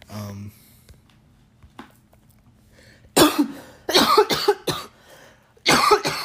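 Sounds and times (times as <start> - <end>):
person coughing harshly from smoking weed: 3.2 - 5.0, 5.6 - 6.2.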